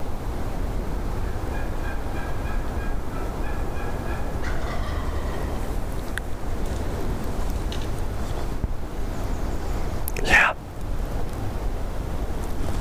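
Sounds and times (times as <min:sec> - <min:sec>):
steady rushing outdoor noise: 0:00.0 - 0:12.7
wild turkey gobbling during a hunt: 0:01.5 - 0:05.8.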